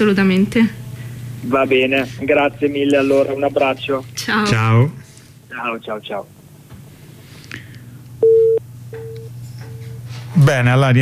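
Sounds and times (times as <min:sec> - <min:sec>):
speech: 0:00.0 - 0:00.8, 0:01.4 - 0:06.4, 0:10.4 - 0:11.0
telephone busy tone beeps after a call hangs up: 0:08.2 - 0:10.0.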